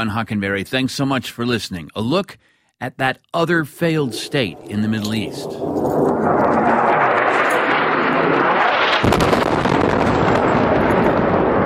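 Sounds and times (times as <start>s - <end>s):
speech: 0.0s - 6.9s
dense sustained rumble after an airstrike blast: 3.9s - 10.4s
airstrike explosion: 4.0s - 11.6s.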